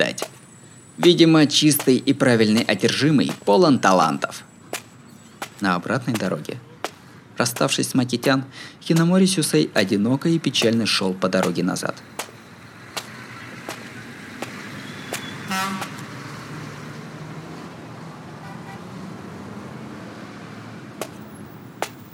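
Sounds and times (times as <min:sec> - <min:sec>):
cars passing on a highway at night: 0:00.0 - 0:22.1
speech: 0:01.0 - 0:04.5, 0:05.6 - 0:06.6, 0:07.4 - 0:12.2
brief tonal honk: 0:14.8 - 0:15.9.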